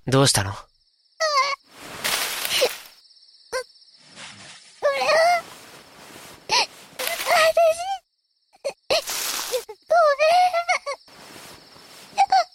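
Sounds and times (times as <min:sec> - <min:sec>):
speech: 0:00.1 - 0:00.7
child crying and sobbing alone: 0:01.2 - 0:01.6, 0:04.8 - 0:05.6, 0:06.5 - 0:08.0, 0:08.6 - 0:11.1, 0:12.2 - 0:12.5.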